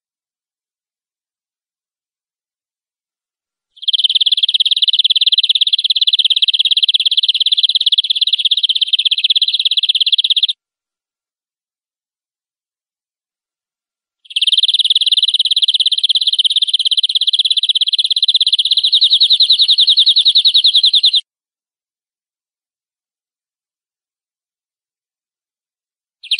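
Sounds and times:
canary training song with long very fast rolling trill: 0:03.8 - 0:10.6, 0:14.2 - 0:21.3, 0:26.2 - 0:26.3.

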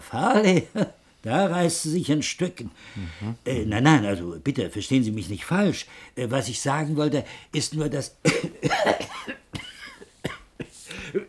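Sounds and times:
speech: 0:00.1 - 0:09.1
person coughing: 0:08.2 - 0:11.2.

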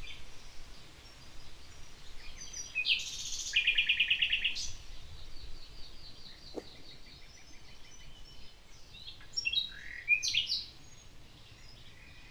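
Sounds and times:
common nightingale morning song: 0:00.0 - 0:12.2
steady Tramuntana wind in a village: 0:00.0 - 0:12.2.

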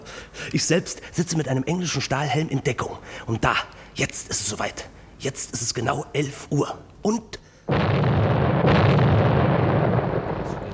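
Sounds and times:
speech: 0:00.5 - 0:07.9
staged explosion at a railway station, 1955 recording: 0:07.7 - 0:10.7.

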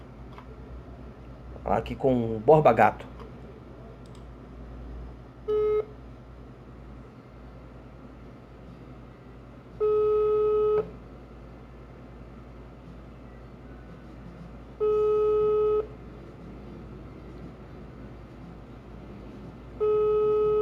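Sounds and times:
speech: 0:01.7 - 0:03.1
telephone line tone beeps while calling a friend: 0:05.5 - 0:05.9, 0:09.8 - 0:10.9, 0:14.8 - 0:15.9, 0:19.8 - 0:20.6.

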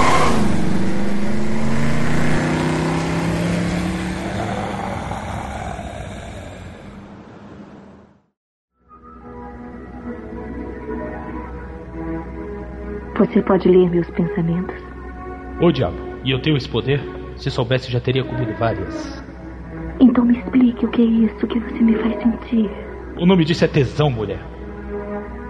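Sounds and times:
car engine revving and accelerating: 0:00.0 - 0:07.6
speech: 0:13.2 - 0:15.0, 0:15.6 - 0:19.2, 0:20.0 - 0:24.5.

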